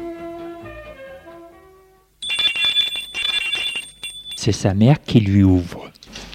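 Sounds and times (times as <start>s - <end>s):
electric doorbell ringing at a parents' house: 2.2s - 4.5s
speech: 4.4s - 5.9s.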